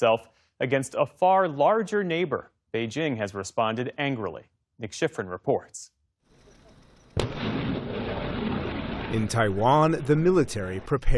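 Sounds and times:
speech: 0.0s - 6.0s, 9.1s - 11.1s
American artillery firing: 7.2s - 11.1s.

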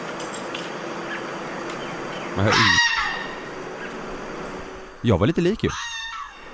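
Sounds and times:
hiss: 0.0s - 6.5s
speech: 2.4s - 2.8s, 5.0s - 5.9s
fox screaming: 2.4s - 3.9s, 5.6s - 6.5s.

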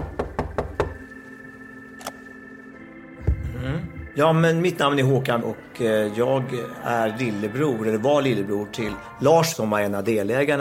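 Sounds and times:
knocking on a door: 0.0s - 1.0s
speech: 4.2s - 10.5s.

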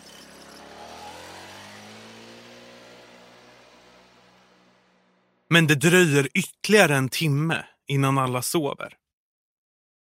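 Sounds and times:
small two-stroke moped engine revving and driving away: 0.0s - 5.3s
speech: 5.5s - 9.0s.

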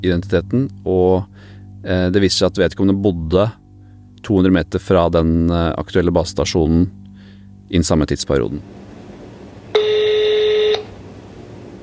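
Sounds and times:
speech: 0.0s - 3.6s, 4.2s - 7.0s, 7.7s - 8.8s
steady telephone dialing tone: 9.7s - 11.1s.

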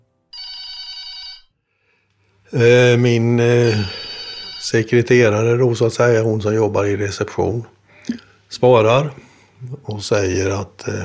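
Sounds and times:
telephone ringing with a bright electronic tone: 0.3s - 1.6s, 3.4s - 5.2s
speech: 2.5s - 4.0s, 4.6s - 11.0s.

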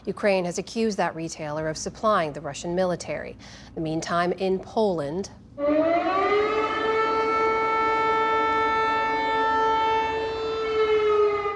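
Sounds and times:
speech: 0.0s - 6.4s
air raid sirens in Poland wailing: 5.6s - 11.5s.

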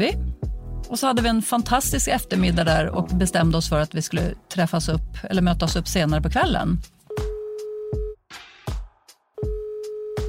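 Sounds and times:
speech: 0.0s - 0.2s, 0.9s - 7.0s
telephone ringback tone on an outgoing phone call: 7.1s - 8.2s, 9.4s - 10.2s.

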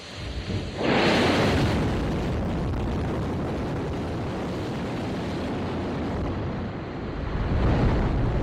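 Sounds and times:
hiss: 0.0s - 1.7s
rocket launch core stage engines roaring: 0.0s - 8.4s.

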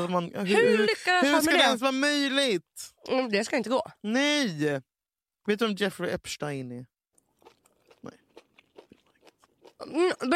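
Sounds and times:
speech: 0.0s - 4.9s, 5.5s - 6.9s, 9.8s - 10.3s
biting and chewing candy: 7.2s - 10.3s.

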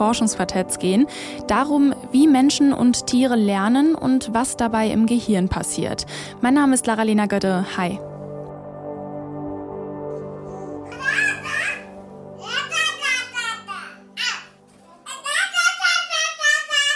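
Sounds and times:
speech: 0.0s - 8.1s
two babies babbling: 10.8s - 16.9s.

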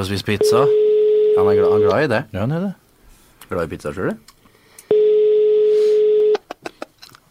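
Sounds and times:
speech: 0.0s - 0.8s, 1.4s - 2.8s, 3.5s - 4.3s
phone ringback tone, call unanswered: 0.4s - 2.0s, 4.9s - 6.4s.

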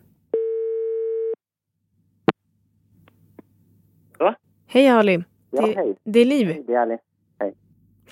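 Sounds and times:
steady electronic phone tone after call disconnects: 0.4s - 1.4s
speech: 4.2s - 8.1s.

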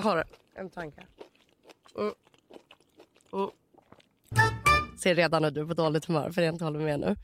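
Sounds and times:
speech: 0.0s - 1.3s, 2.0s - 2.3s, 3.3s - 3.6s, 4.3s - 7.2s
crunching and chewing candy: 0.0s - 4.4s.

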